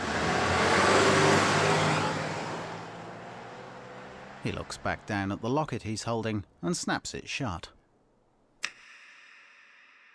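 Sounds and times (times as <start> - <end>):
police patrol car engine rumbling as it drives away: 0.0 - 6.6
speech: 4.4 - 7.8.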